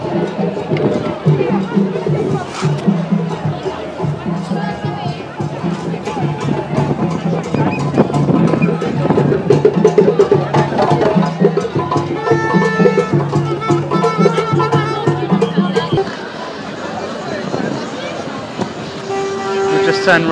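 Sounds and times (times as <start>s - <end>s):
dense outdoor crowd chattering at a street festival: 0.0s - 20.3s
speech: 20.1s - 20.3s.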